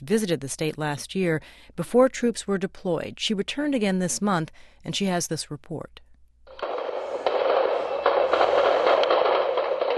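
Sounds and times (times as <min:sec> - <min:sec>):
speech: 0:00.0 - 0:06.0
gunshots echoing across an open town: 0:06.5 - 0:09.9.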